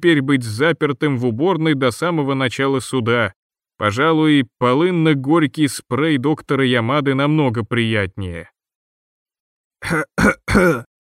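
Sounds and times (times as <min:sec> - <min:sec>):
speech: 0:00.0 - 0:08.5, 0:09.8 - 0:10.9
man clearing his throat: 0:09.8 - 0:10.9.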